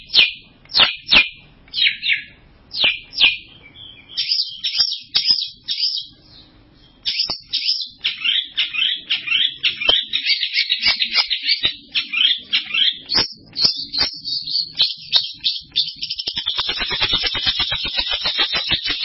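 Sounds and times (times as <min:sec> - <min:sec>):
bird song with rapid chirps and twitters: 0:00.0 - 0:19.0.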